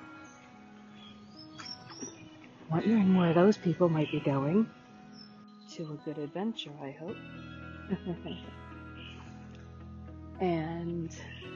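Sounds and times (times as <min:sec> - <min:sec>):
birds chirping at the beach: 0:00.1 - 0:06.6, 0:07.3 - 0:09.8
speech: 0:02.7 - 0:04.8, 0:05.8 - 0:08.6, 0:10.4 - 0:11.4
laughter: 0:07.9 - 0:08.5.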